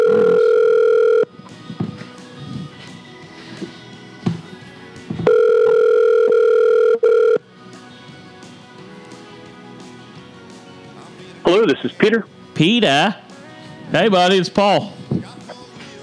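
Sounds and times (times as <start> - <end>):
steady electronic telephone line tone while a call is dialed: 0.0 - 2.0, 5.2 - 7.5
speech: 11.8 - 13.2, 13.9 - 15.0.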